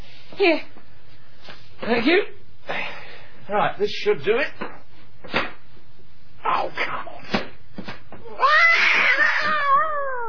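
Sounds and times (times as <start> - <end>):
speech: 0.4 - 0.7, 1.8 - 2.4, 3.5 - 5.4
cat screeching on a lawn: 8.3 - 10.2.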